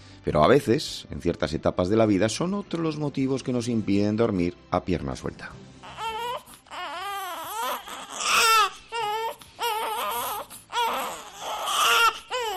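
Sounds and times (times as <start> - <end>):
speech: 0.2 - 5.7
baby crying inconsolably: 5.8 - 12.5.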